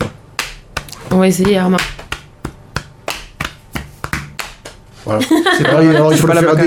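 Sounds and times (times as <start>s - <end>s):
hands slapping thighs and chest rhythmically: 0.0s - 4.9s
speech: 1.1s - 2.0s, 5.0s - 6.6s
laughter: 5.1s - 6.6s.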